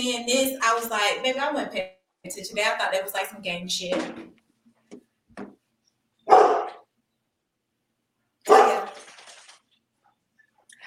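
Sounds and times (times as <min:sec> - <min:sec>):
speech: 0:00.0 - 0:04.4
dog barking excitedly: 0:06.2 - 0:06.9, 0:08.4 - 0:09.0
dog small yips: 0:06.3 - 0:06.8.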